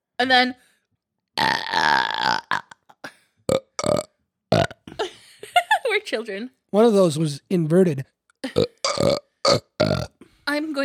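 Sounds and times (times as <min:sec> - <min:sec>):
speech: 0:00.2 - 0:00.7, 0:01.4 - 0:02.4, 0:06.1 - 0:08.2
burps, bassy then high-pitched: 0:01.4 - 0:04.9, 0:08.4 - 0:10.2.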